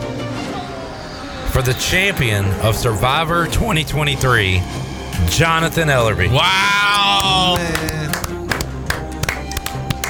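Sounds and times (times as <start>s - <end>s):
speech: 1.6s - 8.0s
small group clapping after a TV game show winner announcement: 6.8s - 10.0s.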